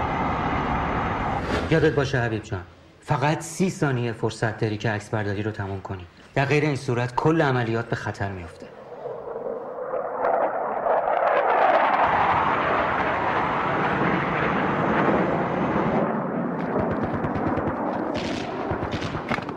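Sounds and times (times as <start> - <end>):
airplane engine roaring: 0.0 - 1.8, 8.1 - 19.5
speech: 1.7 - 8.7.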